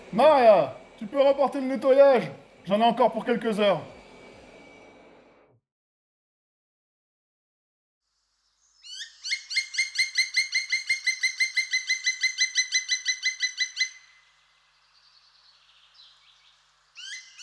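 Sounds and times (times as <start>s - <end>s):
speech: 0.1s - 4.0s
black woodpecker ringing call: 8.8s - 14.2s, 15.9s - 17.4s.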